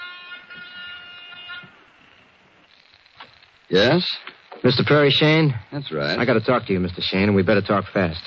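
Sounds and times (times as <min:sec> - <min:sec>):
apartment door buzzer: 0:00.0 - 0:02.2
speech: 0:03.7 - 0:08.2.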